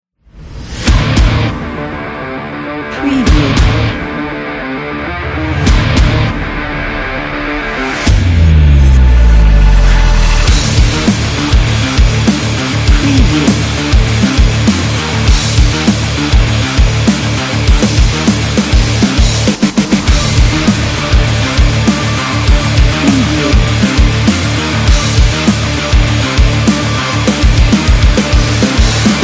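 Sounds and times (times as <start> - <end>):
epic rock cinematic trailer music: 0.3 - 29.2.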